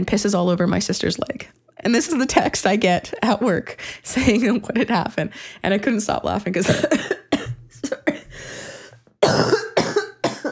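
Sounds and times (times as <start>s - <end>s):
speech: 0.0s - 7.2s
loud harsh coughs with a throaty rasp: 6.6s - 8.5s, 9.2s - 10.5s
softer breathy wheeze: 8.2s - 9.0s.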